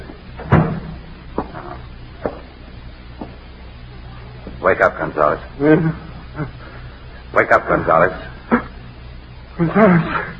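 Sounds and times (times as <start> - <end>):
door swinging shut with a solid thump: 0.4 - 1.6
speech: 4.7 - 6.6, 7.4 - 8.6, 9.6 - 10.3.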